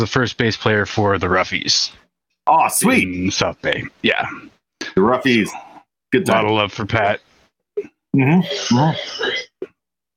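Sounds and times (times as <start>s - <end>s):
speech: 0.0s - 9.5s
harsh raspy coughing: 7.8s - 10.1s.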